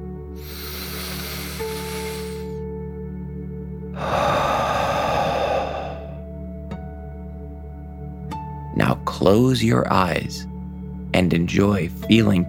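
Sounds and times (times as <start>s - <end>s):
deep breath in and out during a children's guided relaxation: 0.4s - 2.6s, 4.0s - 6.3s
speech: 8.8s - 10.5s, 11.2s - 12.4s.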